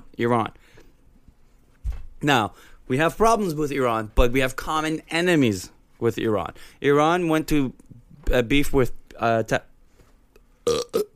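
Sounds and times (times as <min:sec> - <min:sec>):
speech: 0:00.2 - 0:00.8, 0:02.2 - 0:09.7
burps: 0:10.6 - 0:11.1.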